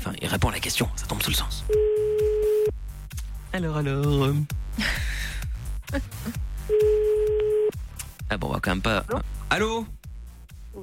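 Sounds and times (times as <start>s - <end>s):
music during a radio prank call: 0.0s - 10.8s
speech: 0.1s - 2.1s, 3.6s - 5.1s, 5.9s - 7.0s, 8.3s - 10.0s
steady even telephone line tone: 1.8s - 2.7s, 6.7s - 7.7s.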